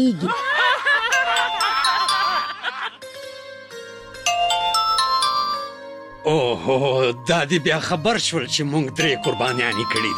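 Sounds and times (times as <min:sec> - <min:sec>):
speech: 0:00.0 - 0:00.5, 0:06.3 - 0:10.1
laughter: 0:00.0 - 0:03.0
telephone ringtone electronic melody: 0:01.1 - 0:06.2, 0:09.0 - 0:10.1.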